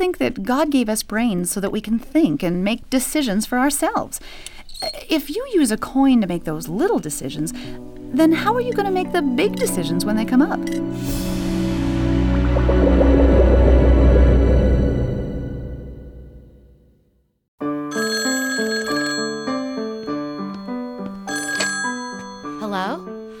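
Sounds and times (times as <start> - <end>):
speech: 0.0 - 11.3
loud dense swell of sound: 10.9 - 17.0
telephone ringing in a rapid warbling trill: 17.9 - 23.1.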